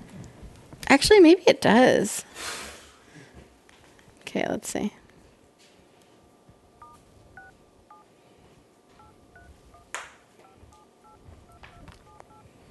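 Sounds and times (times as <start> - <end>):
speech: 0.9 - 2.6, 4.4 - 5.0
smartphone keypad dual-tone dialing beeps: 6.8 - 8.0, 9.0 - 12.4.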